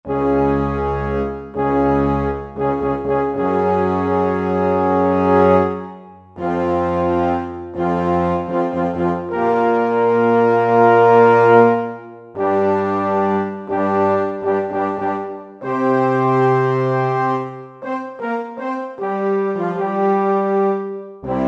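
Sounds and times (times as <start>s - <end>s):
large orchestral horns on a Roland SR-JV80: 0.1s - 21.4s.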